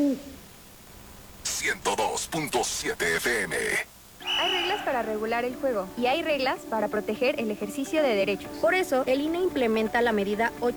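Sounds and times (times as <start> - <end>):
speech: 0.0 - 0.4, 1.6 - 10.7
faint hiss: 0.0 - 10.7
owl hooting: 4.2 - 5.3.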